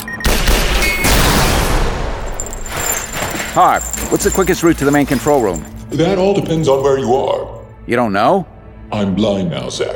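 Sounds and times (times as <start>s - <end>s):
gunfire volley down a hallway: 0.2s - 2.4s
speech: 3.6s - 9.9s.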